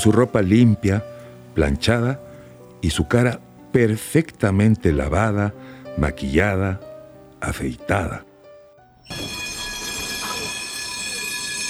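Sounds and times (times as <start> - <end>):
speech: 0.0 - 2.2, 2.8 - 8.3, 9.1 - 9.4
tram braking suddenly with wheels squealing on rails: 9.0 - 11.6.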